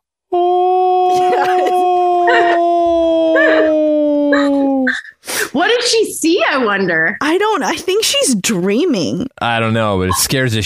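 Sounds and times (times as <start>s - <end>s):
person imitating a howl: 0.3s - 5.0s
speech: 5.8s - 10.6s.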